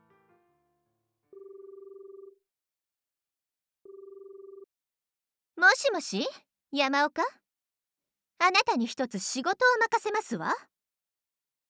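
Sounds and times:
phone line ringback tones while calling a butler: 0:01.3 - 0:02.4, 0:03.9 - 0:04.7
speech: 0:05.7 - 0:07.4, 0:08.4 - 0:10.7.

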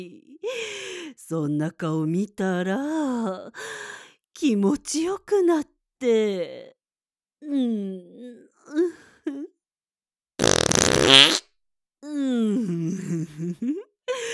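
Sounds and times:
speech: 0:00.0 - 0:06.8, 0:07.4 - 0:09.6, 0:10.9 - 0:11.4, 0:12.0 - 0:14.3
breathy vocal moans and sighs: 0:07.4 - 0:09.2
loud rough sputtering fart: 0:10.4 - 0:11.4.

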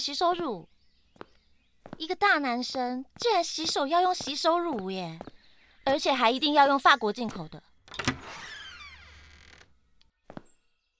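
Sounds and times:
speech: 0:00.0 - 0:01.3, 0:01.9 - 0:07.7
door creaking open: 0:07.1 - 0:09.9.

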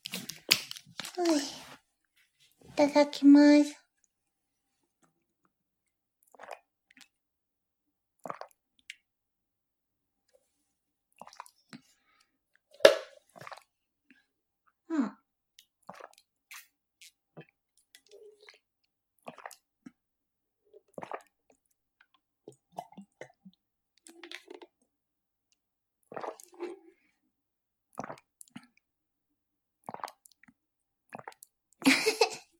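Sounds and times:
person gulping water from a bottle: 0:00.0 - 0:01.7, 0:12.8 - 0:13.6, 0:20.9 - 0:21.3, 0:22.5 - 0:23.5, 0:26.1 - 0:26.8, 0:27.9 - 0:28.8, 0:29.8 - 0:32.5
speech: 0:02.8 - 0:03.8.

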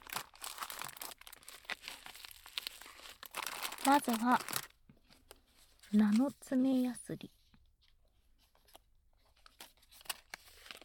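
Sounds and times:
plastic and paper packaging crinkling and tearing as new items are unwrapped: 0:00.0 - 0:04.7, 0:09.4 - 0:10.8
speech: 0:03.8 - 0:04.6, 0:05.9 - 0:07.4.

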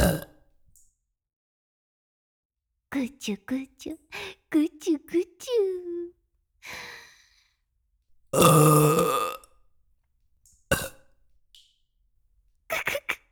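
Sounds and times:
long loud throaty burp: 0:00.0 - 0:00.4, 0:08.4 - 0:09.5, 0:10.7 - 0:11.1
speech: 0:02.9 - 0:06.0, 0:06.6 - 0:07.0, 0:08.3 - 0:09.2
breathy sigh: 0:06.6 - 0:07.4.

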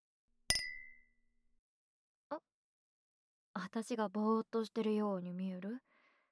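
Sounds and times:
glasses clinking in a toast: 0:00.5 - 0:01.0
speech: 0:02.3 - 0:02.5, 0:03.6 - 0:05.9.

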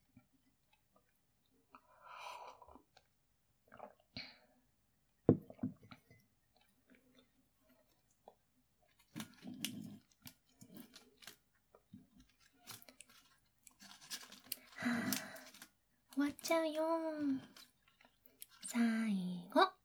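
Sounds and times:
chewing a mouthful of food: 0:02.5 - 0:04.2, 0:05.9 - 0:18.9
speech: 0:16.5 - 0:17.6.

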